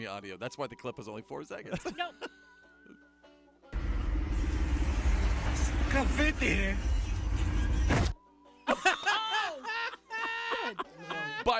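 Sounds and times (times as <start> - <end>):
speech: 0.0 - 3.0, 5.9 - 8.1, 10.7 - 11.5
laughter: 1.7 - 3.0, 8.7 - 11.5
heavy rumble and roaring noise: 3.8 - 8.1
quiet hum: 3.8 - 8.2
car crashing into a pole: 7.1 - 8.2.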